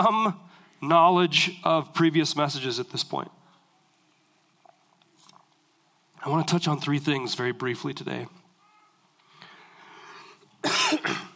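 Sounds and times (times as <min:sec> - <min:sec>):
speech: 0:00.0 - 0:03.4, 0:06.2 - 0:08.4
speaker giving a talk coughing: 0:10.6 - 0:11.3.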